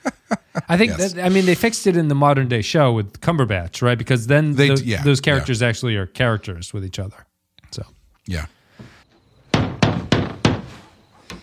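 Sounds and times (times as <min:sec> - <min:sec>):
laughter: 0:00.0 - 0:01.1
speech: 0:00.7 - 0:09.0
firm knocking on a door: 0:09.5 - 0:10.7.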